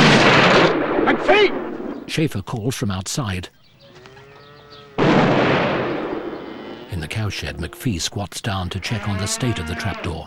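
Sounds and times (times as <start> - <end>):
gunshot fired at a door: 0.0 - 2.1, 5.0 - 6.8
speech: 1.4 - 3.6, 6.9 - 10.2.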